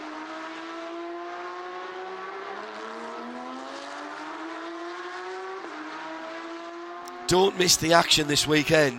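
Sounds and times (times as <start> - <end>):
race car engine screaming on a circuit: 0.0 - 8.9
speech: 7.3 - 8.9.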